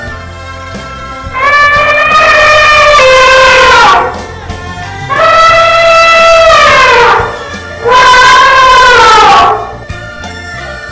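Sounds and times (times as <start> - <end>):
elephant trumpeting: 1.3 - 4.4, 5.1 - 9.8.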